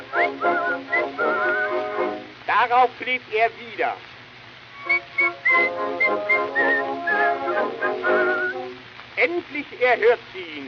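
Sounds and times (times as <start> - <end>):
sharp agitated angry whistling in short quick bursts: 0.0 - 2.1, 4.8 - 8.8
speech: 2.6 - 4.1, 4.8 - 8.5, 9.2 - 10.6.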